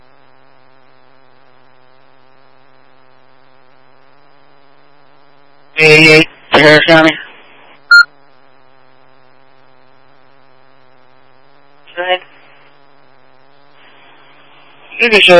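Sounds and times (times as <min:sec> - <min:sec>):
speech: 0:05.8 - 0:07.2, 0:15.0 - 0:15.3
school low pressure alarm system in buzzy electronic bursts set off by hydrant testing: 0:07.9 - 0:08.1.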